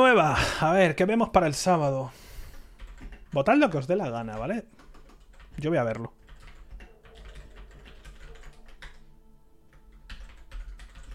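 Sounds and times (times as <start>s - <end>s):
speech: 0.1s - 2.2s, 3.3s - 4.8s, 5.6s - 6.2s
faint typing on a computer keyboard: 2.5s - 9.1s, 9.7s - 11.1s.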